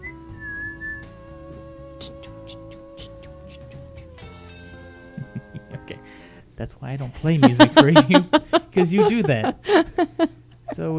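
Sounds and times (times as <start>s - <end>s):
person whistling a short phrase of high clear notes: 0.0s - 3.7s
steady low hum: 0.0s - 10.9s
laughter: 5.2s - 6.0s, 7.2s - 10.4s
speech: 6.6s - 10.9s.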